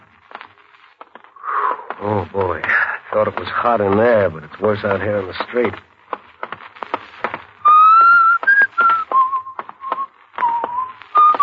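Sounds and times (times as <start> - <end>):
sharp tapping footfalls: 0.2 - 11.4
speech: 2.0 - 5.9
person whistling a simple melody: 7.6 - 11.4.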